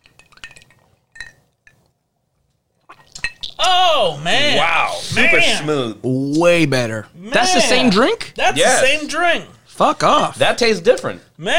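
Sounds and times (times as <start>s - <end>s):
glasses clinking together in a toast: 0.0s - 1.5s, 3.0s - 3.6s
speech: 3.6s - 11.5s.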